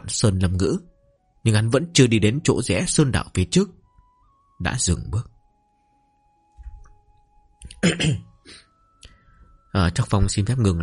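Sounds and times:
speech: 0:00.1 - 0:03.8, 0:04.6 - 0:05.3, 0:07.8 - 0:08.6, 0:09.8 - 0:10.8
gravelly throat clearing: 0:07.7 - 0:08.7
person with a cough coughing: 0:07.7 - 0:08.7.

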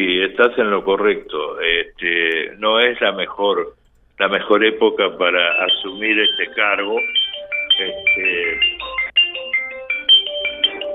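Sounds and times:
speech: 0:00.0 - 0:07.2, 0:07.8 - 0:09.0
mobile phone ringing with a melodic ringtone: 0:05.4 - 0:10.9.

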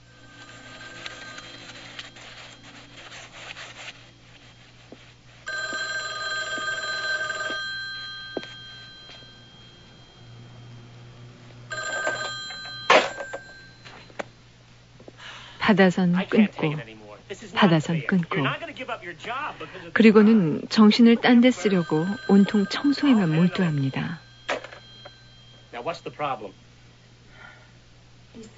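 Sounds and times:
telephone bell ringing: 0:00.0 - 0:04.6, 0:05.5 - 0:14.3, 0:20.0 - 0:26.6
low hum: 0:00.0 - 0:28.5
speech: 0:15.7 - 0:24.2, 0:25.8 - 0:26.6.

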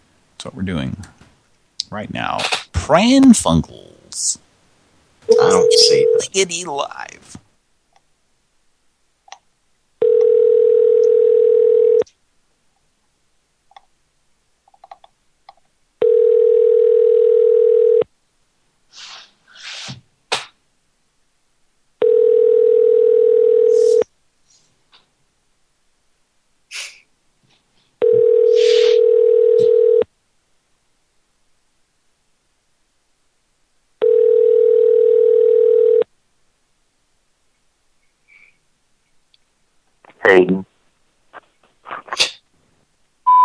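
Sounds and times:
speech: 0:00.4 - 0:01.2, 0:01.9 - 0:04.5, 0:05.4 - 0:07.4
telephone line tones while a call is being placed: 0:05.3 - 0:06.2, 0:10.0 - 0:12.0, 0:16.0 - 0:18.0, 0:22.0 - 0:24.0, 0:28.0 - 0:30.0, 0:34.0 - 0:36.0.

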